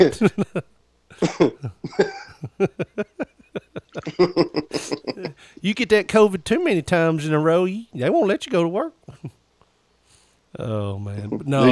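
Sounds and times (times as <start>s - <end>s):
speech: 0.0s - 3.3s, 4.0s - 9.0s, 10.6s - 11.7s
person coughing in rasping hacking fits: 1.2s - 2.4s, 4.0s - 5.4s
laughter: 1.7s - 5.4s.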